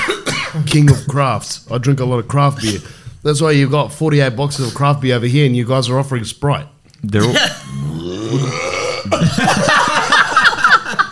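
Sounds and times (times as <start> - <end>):
speech: 0.6 - 9.9
long loud gurgling belch: 7.2 - 9.4
laughter: 9.1 - 11.1.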